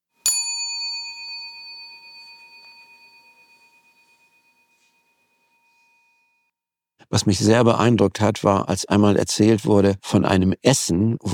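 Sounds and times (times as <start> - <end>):
single bright bell strike ringing: 0.3 - 6.3
speech: 7.1 - 11.3.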